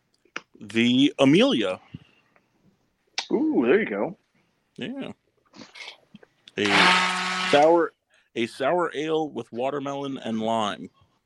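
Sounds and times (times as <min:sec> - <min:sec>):
speech: 0:00.6 - 0:01.9, 0:03.7 - 0:04.2, 0:04.8 - 0:05.7, 0:06.6 - 0:11.0
blender whirring: 0:06.6 - 0:07.8.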